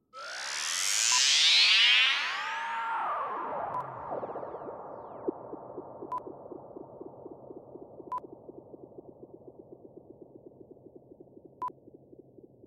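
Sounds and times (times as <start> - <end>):
zapper whoosh: 0.0 - 8.2.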